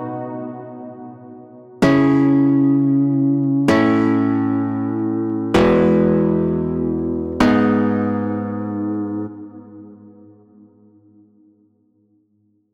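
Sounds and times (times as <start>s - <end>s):
future pop chords: 1.9s - 10.1s.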